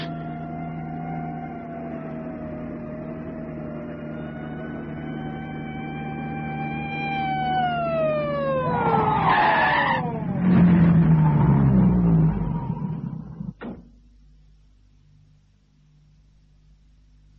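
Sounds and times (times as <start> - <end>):
police car siren wailing: 0.0 - 13.5
low engine rumble: 0.0 - 13.8.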